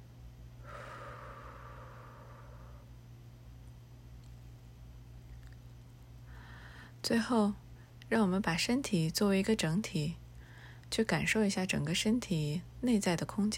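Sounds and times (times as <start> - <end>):
low hum: 0.0 - 11.9
slow exhale during a breathing exercise: 0.6 - 3.0, 6.3 - 7.0
speech: 7.0 - 10.2, 10.9 - 13.5.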